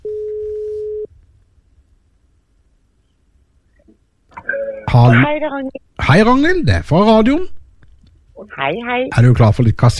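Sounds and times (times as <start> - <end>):
mid-pitched telephone line tone while a call is placed: 0.0 - 1.1
speech: 5.0 - 7.6, 8.4 - 9.9.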